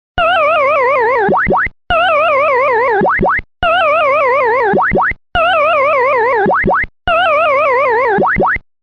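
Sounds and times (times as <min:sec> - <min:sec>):
arcade game over sound: 0:00.2 - 0:08.6.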